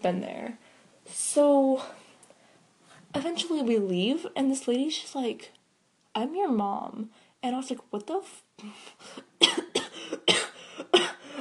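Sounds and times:
speech: 0:00.0 - 0:02.0, 0:03.1 - 0:05.6, 0:06.2 - 0:09.6
person coughing: 0:09.4 - 0:11.4.

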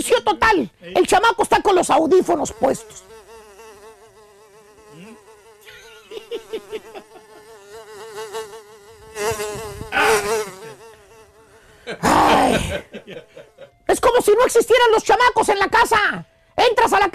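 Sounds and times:
speech: 0:00.0 - 0:03.2, 0:13.9 - 0:17.1
fly buzzing: 0:01.2 - 0:12.6
laughter: 0:05.6 - 0:07.5, 0:11.8 - 0:13.8.

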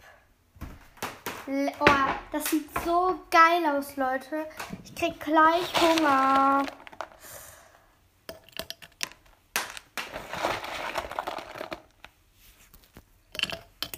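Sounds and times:
speech: 0:01.5 - 0:06.8
crinkly rustling: 0:04.6 - 0:07.4, 0:09.7 - 0:13.2
gummy bears dropping and tumbling: 0:05.6 - 0:07.4, 0:08.4 - 0:12.1.

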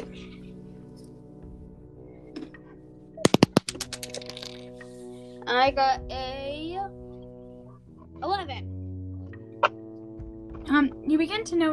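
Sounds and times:
dice rolled for an intelligence investigation check clattering across a hard surface: 0:03.3 - 0:04.7
speech: 0:05.5 - 0:06.3, 0:11.3 - 0:11.7.

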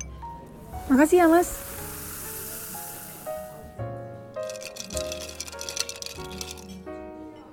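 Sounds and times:
soda pouring over ice with a fizzing hiss: 0:00.6 - 0:03.8, 0:04.4 - 0:06.7
speech: 0:00.9 - 0:01.6
ice cubes clinking against glass: 0:04.4 - 0:06.8.

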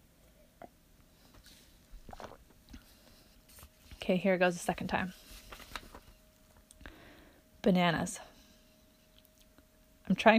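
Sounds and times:
person sipping water: 0:01.9 - 0:02.9
wet swallowing: 0:02.0 - 0:02.6
speech: 0:04.1 - 0:05.2, 0:07.6 - 0:08.3, 0:10.2 - 0:10.3.

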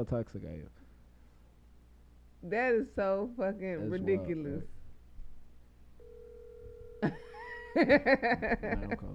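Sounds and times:
speech: 0:00.0 - 0:00.8, 0:02.4 - 0:04.8, 0:07.0 - 0:09.1
low hum: 0:00.0 - 0:09.1
electronic ringback tone of an outgoing phone call: 0:06.0 - 0:07.8
laughter: 0:07.0 - 0:09.1.

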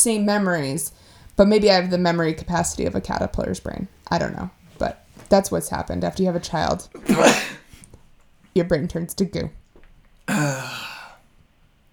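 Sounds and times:
speech: 0:00.0 - 0:07.6, 0:08.6 - 0:09.6, 0:10.3 - 0:10.9
loud sharp sneeze: 0:07.0 - 0:07.7, 0:10.3 - 0:11.2.

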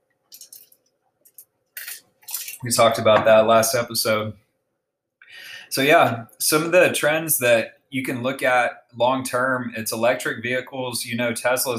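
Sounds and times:
person sipping and swallowing water: 0:01.8 - 0:02.6
speech: 0:02.6 - 0:04.4, 0:05.7 - 0:11.7.

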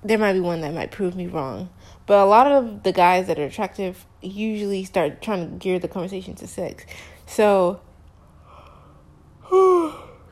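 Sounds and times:
speech: 0:00.0 - 0:07.9, 0:09.5 - 0:10.0
person yawning: 0:09.4 - 0:10.2.

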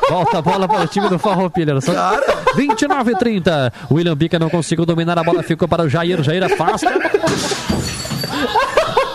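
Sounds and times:
people laughing: 0:00.0 - 0:09.1
speech: 0:00.1 - 0:08.8
glass pane shattering in a football commentary booth: 0:07.2 - 0:08.6.

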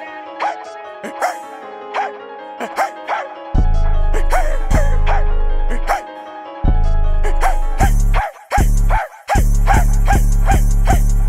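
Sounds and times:
person imitating a dog barking and yipping: 0:00.4 - 0:03.3, 0:04.1 - 0:06.1, 0:07.2 - 0:11.1.

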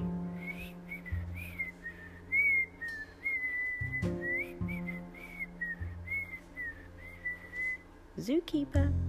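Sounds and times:
low sustained musical backing: 0:00.0 - 0:09.0
zookeeper whistling a lilting tune: 0:00.2 - 0:07.8
speech: 0:08.2 - 0:09.0.

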